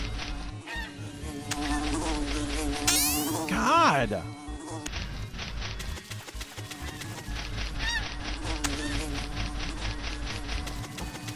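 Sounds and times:
video game wasps buzzing: 0:00.0 - 0:11.3
speech: 0:03.6 - 0:04.9.

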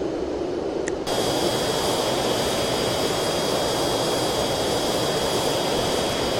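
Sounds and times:
airplane engine roaring in flight: 0:00.0 - 0:06.3.

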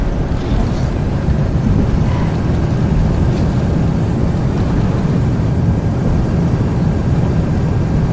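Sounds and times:
airliner landing and braking in a flight simulator video game: 0:00.0 - 0:08.1.

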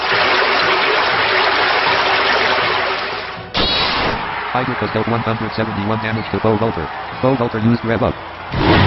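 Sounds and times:
video game water attack effect with gushing rush of water: 0:00.0 - 0:03.4
speech: 0:04.6 - 0:08.7.

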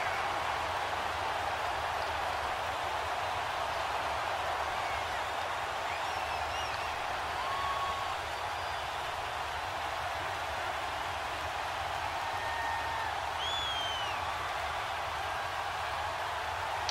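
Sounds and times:
large home stadium crowd cheering a pass interference penalty call: 0:00.0 - 0:16.8
high whistles: 0:04.7 - 0:09.2, 0:12.5 - 0:14.5.

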